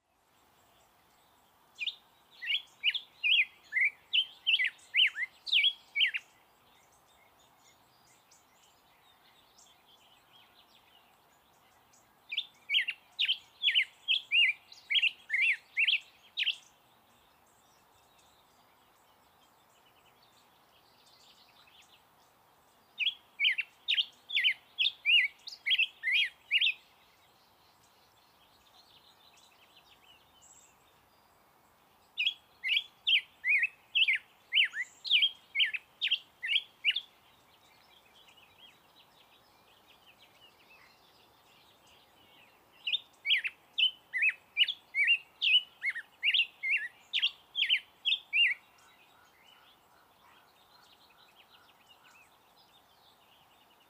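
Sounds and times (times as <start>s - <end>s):
Black-headed Grosbeak Pheucticus melanocephalus: 0.6s - 53.8s.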